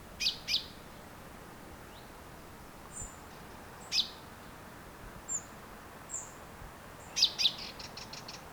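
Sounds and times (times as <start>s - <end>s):
Common chaffinch Fringilla coelebs calls: 0.2s - 0.7s, 3.8s - 4.2s, 7.0s - 8.5s.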